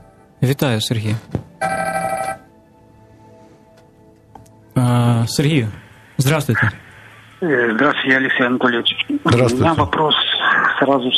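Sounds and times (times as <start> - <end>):
speech: 0.4 - 1.8, 5.3 - 6.8, 7.4 - 11.1
telephone ringing for incoming call with electronic tone: 1.6 - 2.5.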